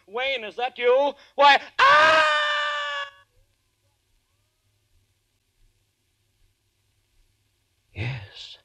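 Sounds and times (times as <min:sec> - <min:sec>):
speech: 0:00.1 - 0:02.4
loud high-pitched human scream: 0:01.4 - 0:03.3.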